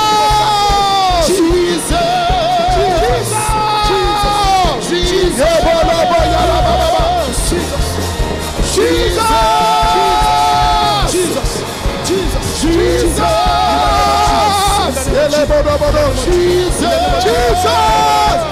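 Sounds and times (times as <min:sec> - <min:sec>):
audience shouting loudly: 0:00.0 - 0:18.5.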